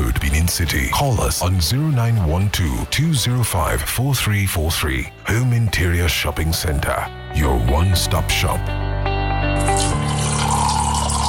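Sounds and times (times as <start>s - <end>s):
speech: 0.5s - 8.8s
water running from a tap: 9.6s - 11.2s.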